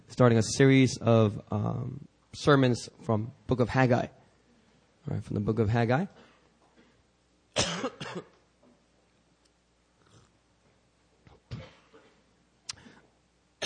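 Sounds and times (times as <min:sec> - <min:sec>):
speech: 0:00.1 - 0:04.2, 0:05.0 - 0:06.3
preacher coughing during a sermon: 0:07.6 - 0:08.4, 0:11.5 - 0:12.2
throat clearing: 0:07.6 - 0:08.4, 0:11.3 - 0:13.0.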